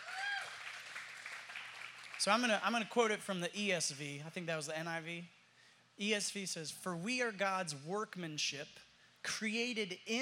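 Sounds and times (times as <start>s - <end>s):
audience clapping: 0.0s - 3.0s
speech: 2.2s - 5.4s, 6.0s - 10.1s.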